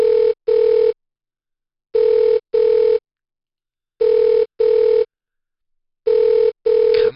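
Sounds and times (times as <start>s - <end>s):
telephone ringback tone: 0.0s - 1.0s, 2.0s - 3.0s, 4.0s - 5.1s, 6.1s - 6.9s.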